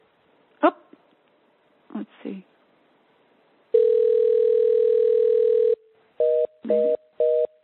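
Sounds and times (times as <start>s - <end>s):
speech: 0.6s - 0.9s
electronic outgoing call ringing tone: 3.7s - 7.6s.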